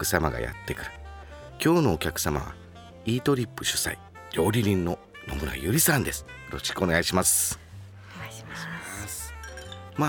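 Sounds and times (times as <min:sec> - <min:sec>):
speech: 0:00.0 - 0:01.0, 0:01.6 - 0:07.6
glasses clinking in a beer toast: 0:08.9 - 0:10.0.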